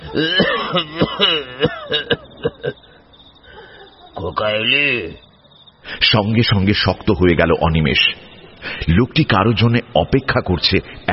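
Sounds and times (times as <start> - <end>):
person coughing on a raised porch in a narrow slum lane at night: 0.0 - 2.8
laughter: 0.0 - 4.8
speech: 0.1 - 2.0, 4.4 - 5.2, 5.9 - 11.1.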